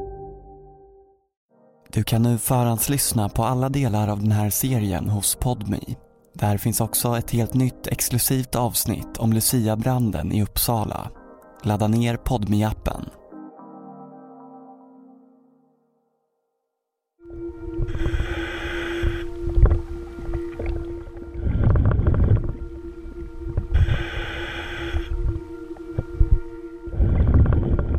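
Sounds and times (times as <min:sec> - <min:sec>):
speech: 0:02.0 - 0:13.2
steady low underwater hum and rumble: 0:17.2 - 0:27.9.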